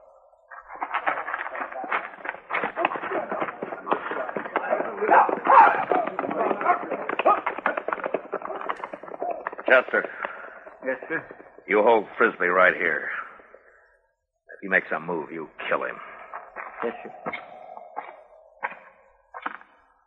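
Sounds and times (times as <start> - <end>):
hoofbeats of several galloping horses ridden away: 0.5 - 12.0
speech: 9.7 - 10.2, 10.8 - 13.2, 14.6 - 16.1, 16.8 - 17.4.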